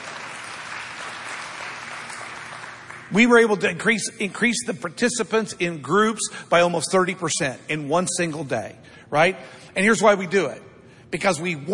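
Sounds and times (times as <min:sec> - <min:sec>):
large church audience applauding: 0:00.0 - 0:03.1
speech: 0:03.1 - 0:11.7.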